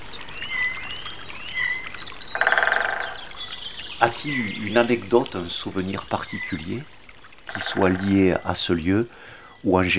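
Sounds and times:
forest stream trickling: 0.0s - 9.9s
birds whistling thin calls: 0.1s - 6.8s, 7.5s - 8.6s
speech: 4.1s - 9.9s.

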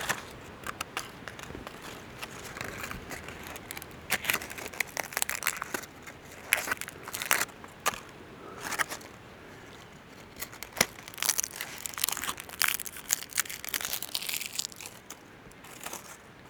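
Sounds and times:
dry twigs and brittle debris crunching in a dense fir forest: 0.0s - 16.2s
soft rustling: 0.0s - 16.4s.

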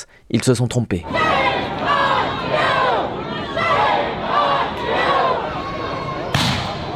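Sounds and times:
speech: 0.0s - 1.3s
large protest crowd shouting in rhythmic waves: 1.0s - 6.9s
sharp bang: 6.3s - 6.9s.

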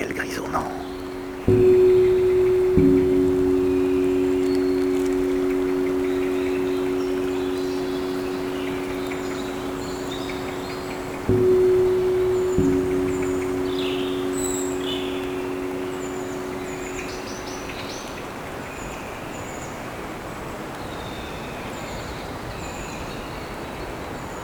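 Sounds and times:
birds chirping in a forest of dead leaves on a cool grey day: 0.0s - 19.8s.

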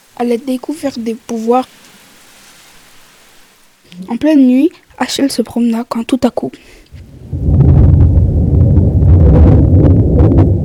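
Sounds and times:
faint crackling bursts of lightning: 0.0s - 10.6s
speech: 0.2s - 2.0s, 4.0s - 7.0s
thunder rolling after a lightning strike at night: 6.9s - 10.6s.

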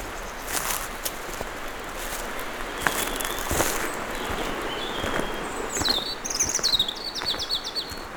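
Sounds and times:
birds singing in dense woodland: 0.0s - 8.1s
flowing stream in dense woodland: 0.0s - 8.1s.

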